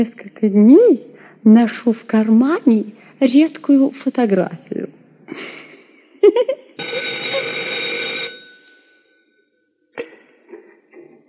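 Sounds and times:
speech: 0.0s - 5.6s, 6.2s - 7.7s
telephone bell ringing: 6.8s - 9.6s.

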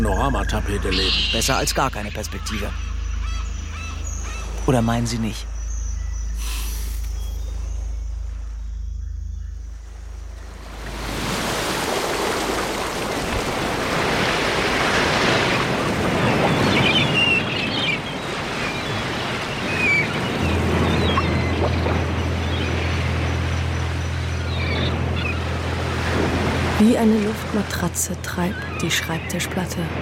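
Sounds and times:
speech: 0.0s - 2.9s, 4.7s - 5.5s, 28.1s - 30.0s
low hum: 0.0s - 11.5s, 20.2s - 28.8s
waves washing on water in a bay: 10.4s - 30.0s.

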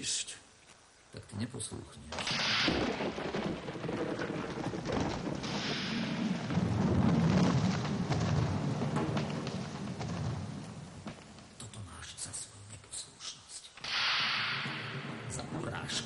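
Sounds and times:
speech: 0.0s - 0.4s, 1.1s - 5.0s
steady rain-like hiss: 0.0s - 16.0s
thunder from a lightning strike: 2.2s - 11.9s, 14.1s - 16.0s.

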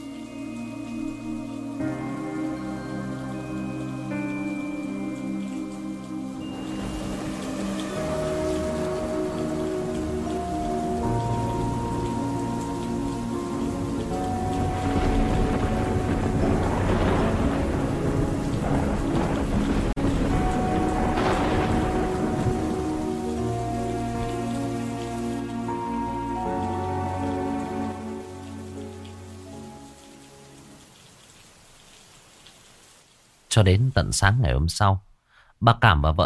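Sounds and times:
sustained tonal music: 0.0s - 31.0s
rain and wind on a stormy night: 0.0s - 34.3s
low rumbles: 5.6s - 28.4s
speech: 33.5s - 36.2s.

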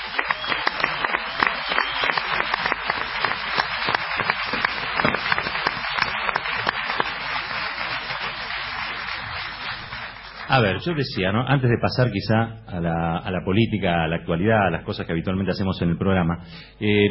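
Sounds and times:
audience applause greeting a guest on a political talk program: 0.0s - 11.0s
speech: 10.6s - 17.0s.

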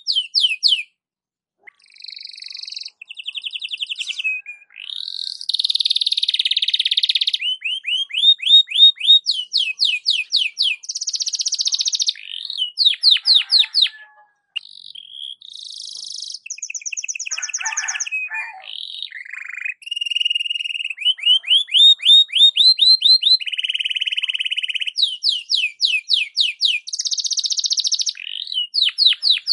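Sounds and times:
Belgian canary singing varied tours: 0.0s - 1.0s, 1.6s - 29.5s.

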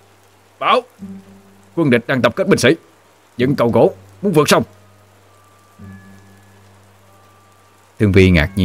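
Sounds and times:
rain falling at night over a riverside military camp: 0.0s - 8.6s
speech: 0.6s - 4.8s, 8.0s - 8.6s.

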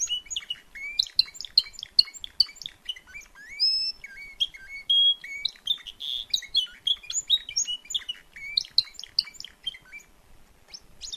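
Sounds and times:
Timbrado canary singing at a canary event: 0.0s - 11.1s.

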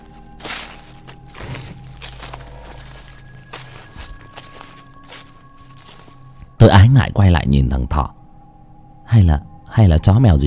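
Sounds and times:
rustling footsteps outside at night: 0.0s - 6.6s
low steady hum: 0.0s - 10.0s
speech: 6.6s - 8.2s, 9.1s - 10.4s.

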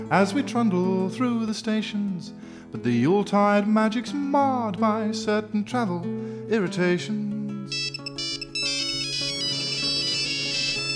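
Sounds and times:
speech: 0.0s - 7.8s
bright electronic mobile phone ringtone melody: 7.7s - 10.9s.

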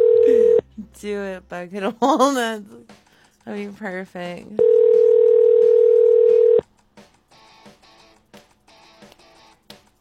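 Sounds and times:
telephone ringing tone on a call: 0.0s - 0.6s, 4.6s - 6.6s
speech: 1.0s - 4.8s.

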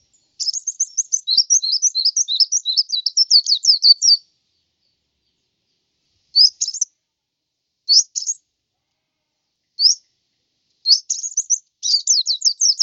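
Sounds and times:
white-eye singing sweet high chattering notes: 0.0s - 4.2s, 6.4s - 6.9s, 7.9s - 8.4s, 9.8s - 10.0s, 10.9s - 12.8s.

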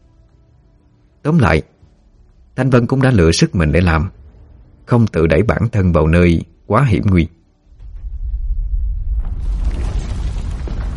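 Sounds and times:
speech: 1.2s - 1.7s, 2.6s - 4.2s, 4.9s - 7.4s
earth, rocks, sand and dust churning: 7.7s - 10.9s
thunderous blast across the sky: 7.7s - 10.9s.

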